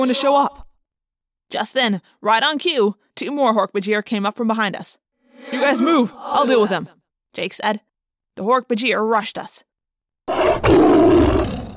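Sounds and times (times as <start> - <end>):
speech: 0.0 - 0.6, 1.5 - 9.7
loud animal roar: 10.3 - 11.7.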